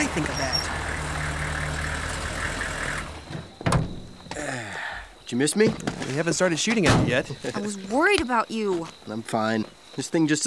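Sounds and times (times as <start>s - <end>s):
truck engine idling: 0.0s - 3.6s
speech: 0.2s - 0.8s, 5.3s - 10.4s.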